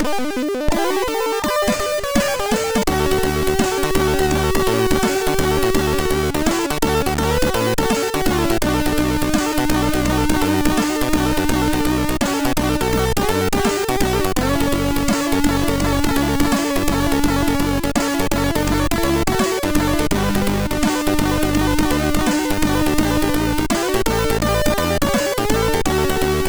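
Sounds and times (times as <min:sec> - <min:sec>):
Bahia funk chiptune music on MOS6581R3 sound chip: 0:00.0 - 0:26.4.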